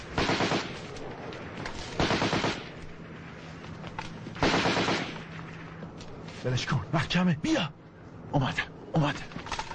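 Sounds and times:
automatic rifle gunfire in a reed bed: 0.1 - 0.9, 2.0 - 2.7, 4.4 - 5.2
speech: 6.4 - 7.8, 8.3 - 9.4.

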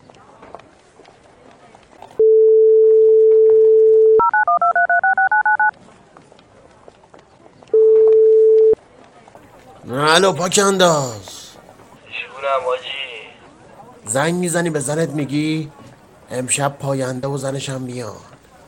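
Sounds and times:
faint noise: 0.0 - 18.6
telephone dial tone: 2.2 - 5.7, 7.8 - 8.8
telephone keypad beeps: 2.2 - 5.7, 7.8 - 8.8
speech: 10.1 - 11.3, 14.1 - 18.4.

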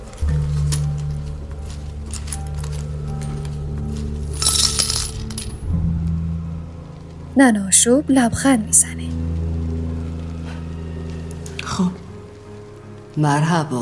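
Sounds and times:
low steady hum: 0.0 - 13.7
coins poured from a purse clinking into a clay bowl: 4.3 - 5.6
speech: 7.4 - 9.4, 13.2 - 13.8.

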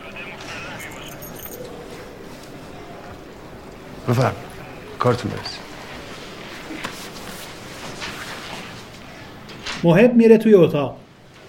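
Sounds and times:
murmur of faint voices in a police investigation building: 0.0 - 7.0
room key jangling as it is handed over: 0.7 - 2.0
speech: 4.1 - 5.7, 9.8 - 11.0.

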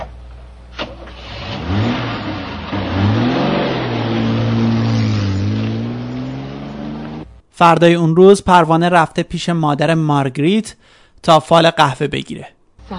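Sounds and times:
car engine starting with a click and a burst: 0.7 - 7.4
speech: 7.6 - 12.9.

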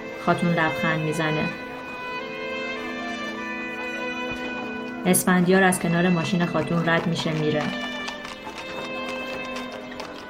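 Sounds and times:
speech: 0.2 - 1.6, 5.0 - 7.9
hooves of a horse pulling a carriage clip-clopping: 2.9 - 10.2.

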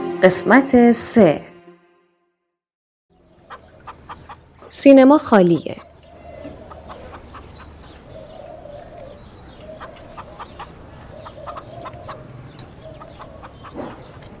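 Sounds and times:
speech: 0.2 - 1.5, 4.8 - 5.9
pigeons cooing: 3.2 - 4.7, 5.4 - 14.3.

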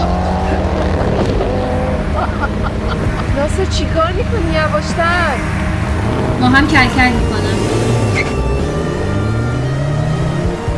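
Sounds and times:
two cars racing side by side with engines roaring: 0.0 - 10.7
laughter: 0.4 - 3.7
speech: 3.6 - 8.0.

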